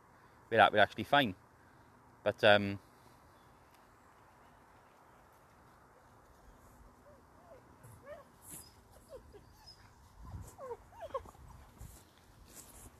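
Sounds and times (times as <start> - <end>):
speech: 0.5 - 1.4, 2.2 - 2.8
dogs whimpering and yipping: 7.0 - 11.9.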